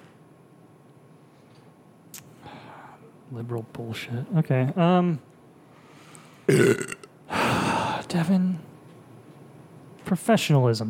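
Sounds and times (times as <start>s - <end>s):
speech: 3.3s - 5.3s, 8.2s - 8.7s, 10.1s - 10.8s
loud low croaking burp: 6.5s - 7.1s.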